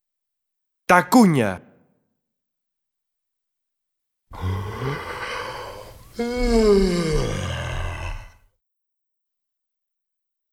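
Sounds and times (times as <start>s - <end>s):
speech: 0.9s - 1.6s
person yawning with a groaning exhale: 4.3s - 8.4s.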